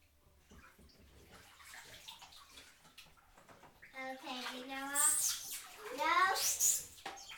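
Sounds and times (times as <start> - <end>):
water pouring steadily into a big bathtub: 0.4 - 7.3
speech: 4.1 - 5.4.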